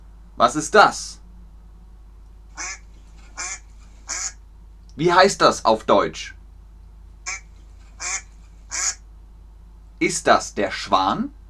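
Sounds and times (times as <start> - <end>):
faint low hum: 0.0 - 11.4
speech: 0.4 - 1.2, 5.0 - 6.4, 10.0 - 11.4
duck quacking: 2.5 - 4.4, 7.2 - 9.0.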